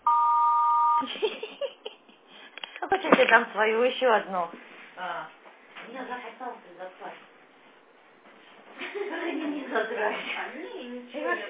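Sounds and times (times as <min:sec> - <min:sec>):
answering machine beep before a voice message: 0:00.0 - 0:01.1
speech: 0:01.0 - 0:01.6, 0:02.9 - 0:07.2, 0:09.7 - 0:11.4.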